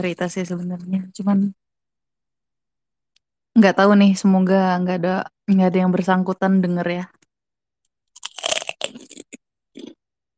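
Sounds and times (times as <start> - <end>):
speech: 0.0 - 1.6, 3.6 - 7.2
crunching on kerupuk crackers: 8.1 - 10.0.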